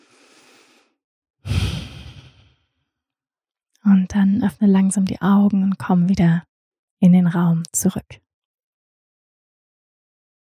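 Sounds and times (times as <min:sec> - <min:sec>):
person breathing out like a sigh: 0:00.0 - 0:00.9, 0:01.5 - 0:02.6
speech: 0:03.9 - 0:08.2.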